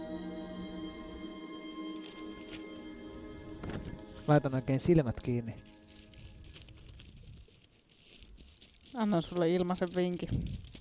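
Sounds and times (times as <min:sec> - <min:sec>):
large book pages rustling and being turned: 0:01.9 - 0:10.8
speech: 0:04.3 - 0:05.7, 0:09.0 - 0:10.7.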